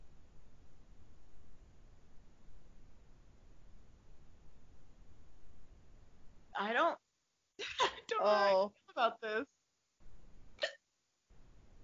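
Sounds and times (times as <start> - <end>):
low hiss: 0.0 - 11.8
speech: 8.2 - 9.5
hiccup: 10.6 - 10.8.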